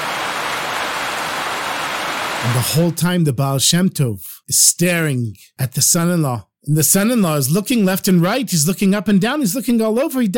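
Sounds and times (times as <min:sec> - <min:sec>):
heavy rain pouring down: 0:00.0 - 0:02.6
speech: 0:02.4 - 0:10.3.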